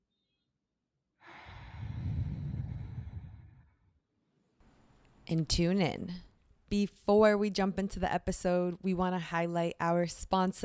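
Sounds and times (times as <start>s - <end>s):
deep inhaled breath: 1.2s - 3.7s
speech: 5.3s - 10.6s.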